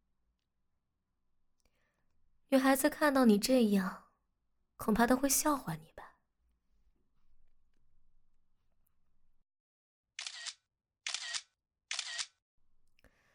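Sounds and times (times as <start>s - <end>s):
speech: 2.5s - 4.0s, 4.8s - 5.9s
camera shutter firing as photos are taken: 10.2s - 12.4s.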